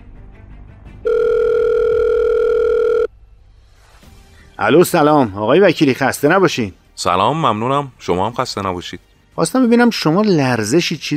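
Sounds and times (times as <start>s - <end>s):
steady electronic telephone line tone: 1.0s - 3.1s
speech: 4.6s - 11.1s.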